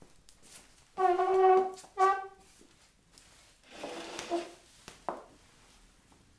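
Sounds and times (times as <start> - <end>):
chairs: 1.0 - 2.4, 3.6 - 4.6.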